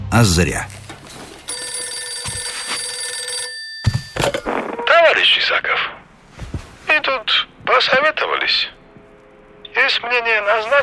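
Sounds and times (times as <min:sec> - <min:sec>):
speech: 0:00.1 - 0:00.8, 0:05.0 - 0:05.9, 0:07.0 - 0:08.8, 0:09.8 - 0:10.8
telephone bell ringing: 0:01.4 - 0:04.9.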